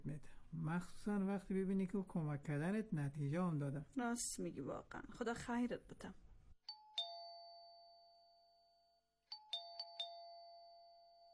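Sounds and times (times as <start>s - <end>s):
speech: 0.0s - 6.2s
doorbell chiming: 6.7s - 11.3s.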